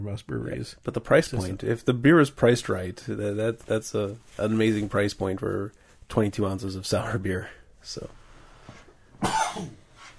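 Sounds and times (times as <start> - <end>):
speech: 0.0 - 8.2, 9.2 - 9.8
person with a scratchy throat coughing: 9.2 - 9.8.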